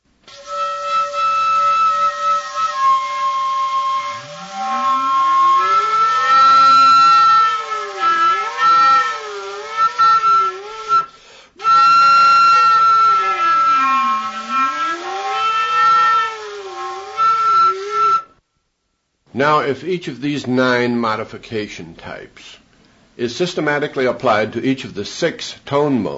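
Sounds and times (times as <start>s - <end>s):
flute playing sustained high bending notes: 0.3s - 18.4s
speech: 19.4s - 22.6s, 23.2s - 26.1s.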